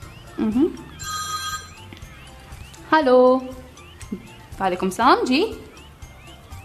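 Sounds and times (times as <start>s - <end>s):
speech: 0.4s - 0.9s, 2.9s - 5.7s
electronic telephone ringtone: 0.9s - 1.9s.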